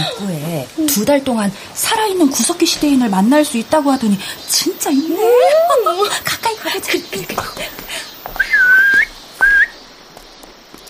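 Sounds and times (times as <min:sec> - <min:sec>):
speech: 0:00.2 - 0:08.0
human whistling as a signal: 0:08.4 - 0:09.8.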